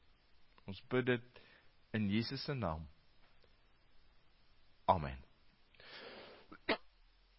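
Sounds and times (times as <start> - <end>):
speech: 0.7 - 3.0, 4.9 - 5.3
person coughing: 6.5 - 6.9.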